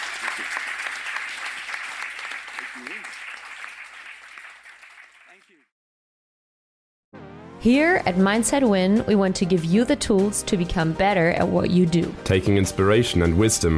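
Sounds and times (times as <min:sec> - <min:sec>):
room full of people applauding: 0:00.0 - 0:05.7
speech: 0:07.6 - 0:13.7.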